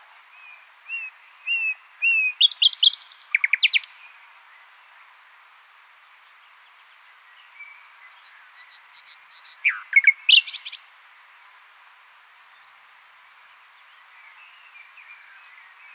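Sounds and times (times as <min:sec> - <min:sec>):
common nightingale Luscinia megarhynchos song: 0:00.9 - 0:04.0, 0:08.1 - 0:10.8.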